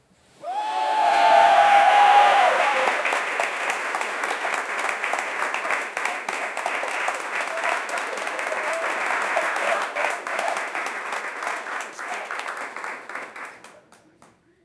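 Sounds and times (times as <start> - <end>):
crowd clapping: 0.4 - 14.4.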